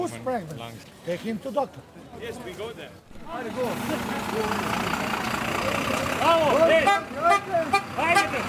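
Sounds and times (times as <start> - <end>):
refugees talking and calling out: 0.0 - 8.4
buses idling outside a registration centre in Preševo, Serbia: 3.1 - 8.4.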